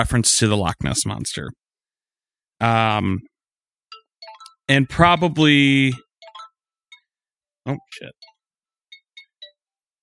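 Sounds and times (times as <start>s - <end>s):
speech: 0.0s - 1.6s, 2.6s - 3.3s, 4.7s - 6.0s, 7.6s - 8.3s
phone alert tone playing a short jazzy tune: 3.9s - 7.1s, 7.7s - 9.6s.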